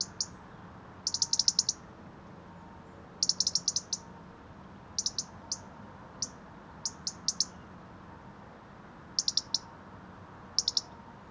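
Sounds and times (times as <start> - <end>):
European robin Erithacus rubecula giving tick calls: 0.0 - 0.4, 1.0 - 1.8, 3.2 - 4.1, 5.0 - 7.7, 9.2 - 9.7, 10.6 - 11.0
steady low background hiss: 0.0 - 11.3.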